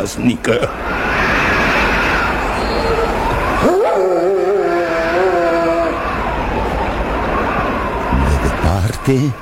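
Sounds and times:
speech: 0:00.0 - 0:01.0, 0:09.1 - 0:09.3
dog howling: 0:02.0 - 0:08.4.

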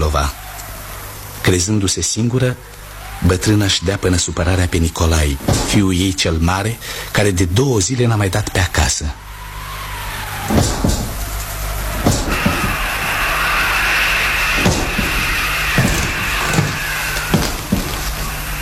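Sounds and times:
speech: 0:01.4 - 0:09.2
garden gate slamming: 0:10.4 - 0:18.5.

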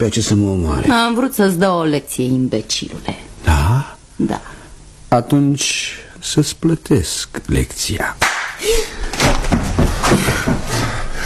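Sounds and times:
speech: 0:00.0 - 0:04.5, 0:05.1 - 0:08.9
low noise: 0:00.0 - 0:11.2
sharp loud slap across the face: 0:08.2 - 0:08.6.

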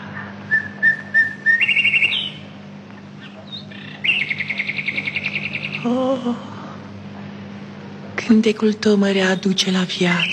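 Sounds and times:
nightingale singing in varied phrases: 0:00.0 - 0:06.2, 0:09.2 - 0:10.3
steady low hum: 0:00.0 - 0:10.3
speech: 0:05.8 - 0:06.5, 0:08.3 - 0:10.3.

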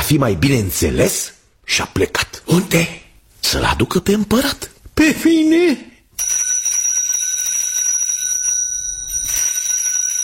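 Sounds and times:
speech: 0:00.1 - 0:06.3
small hand bell ringing: 0:06.2 - 0:10.2.

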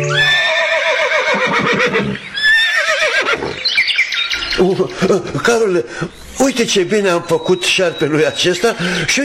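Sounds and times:
horse whinnying: 0:00.1 - 0:04.6
speech: 0:04.6 - 0:09.2.

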